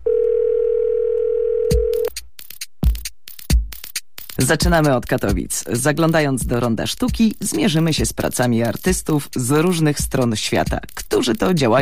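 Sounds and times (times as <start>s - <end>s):
telephone dial tone: 0.0s - 2.1s
speech: 4.4s - 11.8s.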